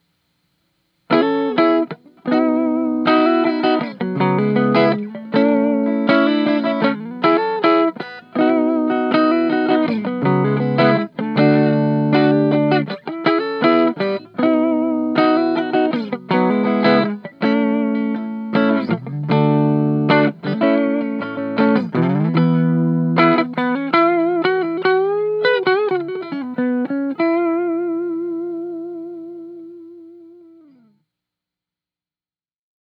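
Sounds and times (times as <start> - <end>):
clean neck pickup tone of 1958 Gibson Les Paul Standard Reissue electric guitar: 1.1 - 30.9.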